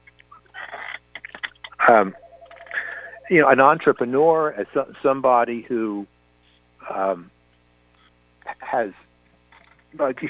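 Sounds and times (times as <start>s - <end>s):
speech: 1.9s - 2.2s, 3.3s - 6.1s, 6.8s - 7.4s, 8.7s - 9.0s, 10.0s - 10.2s
telephone beeping and ringing: 2.0s - 3.8s.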